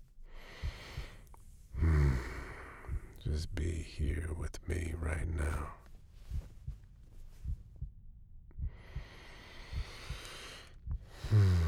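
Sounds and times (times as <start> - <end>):
slow deep breathing: 0.2 - 3.3, 8.6 - 11.6
speech: 3.4 - 5.8.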